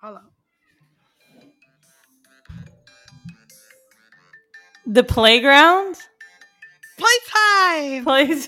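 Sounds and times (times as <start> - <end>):
speech: 0.0 - 0.4, 4.9 - 6.0, 7.4 - 8.4
bright melodic phone ringtone of electronic notes: 1.6 - 8.0
deeper thumps: 2.5 - 3.4.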